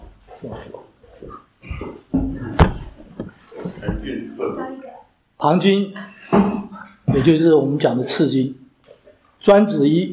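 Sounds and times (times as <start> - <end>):
speech: 0.4 - 0.8, 4.1 - 6.6, 7.2 - 8.6, 9.4 - 10.1
chair shifted knocking against the floor: 1.7 - 4.2.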